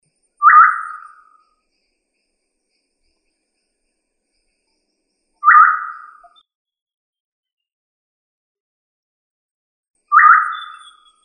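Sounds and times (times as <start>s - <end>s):
quail of family Tinamidae calling: 0.4s - 1.3s, 5.4s - 6.4s, 10.1s - 11.2s.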